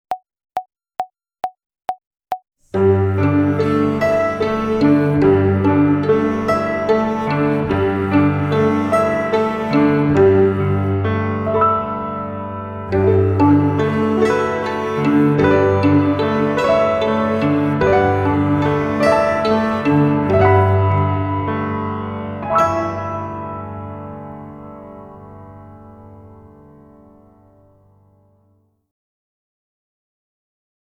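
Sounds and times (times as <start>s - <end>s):
pizzicato violin: 2.7s - 26.1s.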